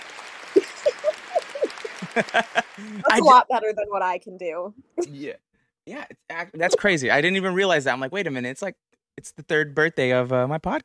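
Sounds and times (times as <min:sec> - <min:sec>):
whoops and cheers: 0:00.0 - 0:03.3
canned crowd applause from an applause sound-effect button: 0:00.0 - 0:03.4
laughter: 0:00.5 - 0:03.4, 0:06.5 - 0:07.3
speech: 0:02.2 - 0:10.8.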